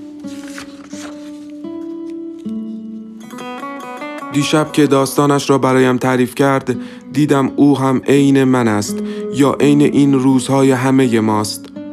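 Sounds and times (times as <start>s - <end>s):
notebook pages being turned: 0.0s - 2.8s
sustained music tones: 0.0s - 11.1s
speech: 4.4s - 11.7s.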